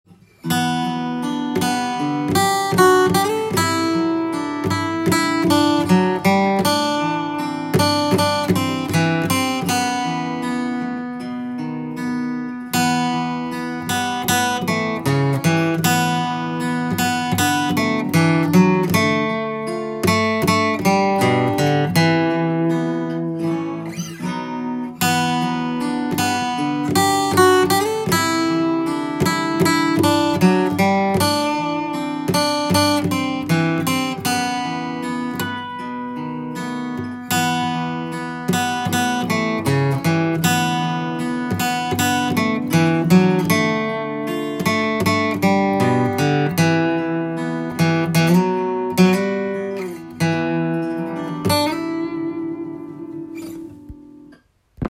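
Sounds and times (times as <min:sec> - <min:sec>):
guitar: 0:00.0 - 0:54.8.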